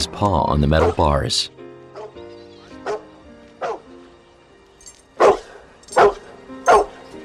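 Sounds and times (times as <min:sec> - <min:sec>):
speech: 0:00.1 - 0:01.6
dog barking: 0:00.8 - 0:01.0, 0:01.9 - 0:02.2, 0:02.8 - 0:03.9, 0:05.2 - 0:07.0.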